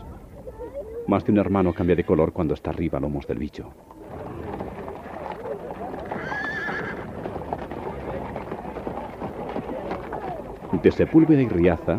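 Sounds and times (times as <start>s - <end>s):
busy crowd murmur: 0.0s - 2.3s, 3.7s - 11.9s
hooves clopping: 0.0s - 11.9s
speech: 1.1s - 4.0s, 10.8s - 11.9s
horse whinnying: 6.0s - 7.2s.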